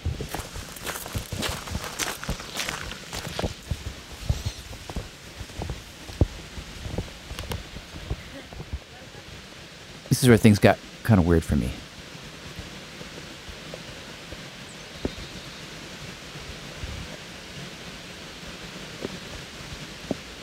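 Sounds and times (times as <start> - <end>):
footsteps crunching and scuffing outdoors around a childhood home: 0.0 - 8.8
light rain pattering: 0.0 - 20.4
small creek running through the grounds of a childhood home: 0.0 - 20.4
speech: 10.2 - 11.8.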